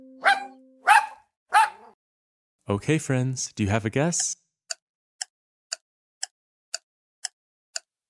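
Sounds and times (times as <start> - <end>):
sharp dog barks: 0.2 - 2.0
speech: 2.7 - 4.4.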